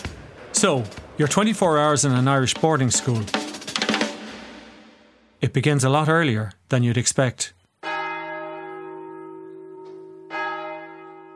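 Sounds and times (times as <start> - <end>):
speech: 0.6 - 3.5, 5.4 - 7.6
large monastery prayer bell tolling at a monastery in Ireland: 7.8 - 11.3.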